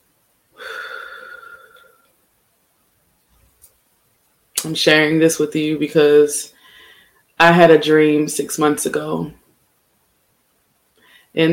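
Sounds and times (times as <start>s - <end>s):
deep breath in through the nose and out through the mouth: 0.6s - 2.1s, 6.6s - 7.2s, 11.0s - 11.4s
speech: 4.6s - 6.6s, 7.4s - 9.4s, 11.4s - 11.5s.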